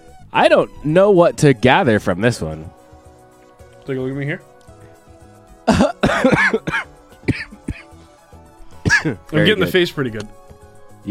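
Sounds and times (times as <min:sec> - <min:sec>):
speech: 0:00.3 - 0:02.8, 0:03.9 - 0:04.5, 0:05.7 - 0:06.8, 0:09.0 - 0:10.4
person coughing: 0:05.7 - 0:08.0, 0:08.8 - 0:09.2
throat-clearing: 0:05.7 - 0:08.0, 0:08.8 - 0:09.3.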